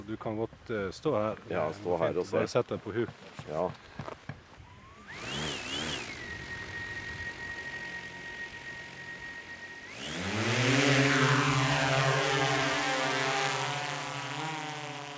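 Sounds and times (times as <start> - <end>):
speech: 0.1 - 4.2
drone motors whining and buzzing while taking off and hovering: 3.6 - 15.1.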